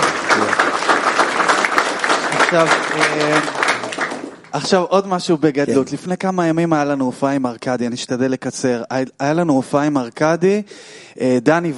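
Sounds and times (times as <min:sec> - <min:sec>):
audience clapping in dense sustained applause: 0:00.0 - 0:05.2
speech: 0:02.5 - 0:03.6, 0:04.5 - 0:11.7.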